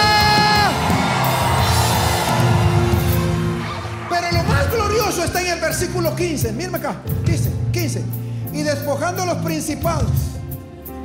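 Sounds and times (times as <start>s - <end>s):
person holding a rising whoop: 0.0s - 4.7s
crowd shouting and cheering: 0.0s - 6.2s
speech: 5.7s - 10.4s.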